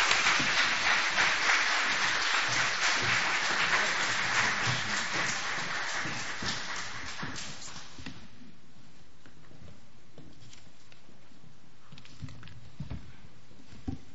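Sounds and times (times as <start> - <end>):
audience applauding a speaker: 0.0 - 7.7.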